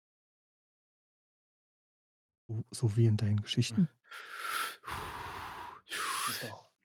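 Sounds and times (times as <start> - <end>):
speech: 2.5 - 5.1, 6.3 - 6.7
heavy breathing of a large creature: 4.0 - 6.6.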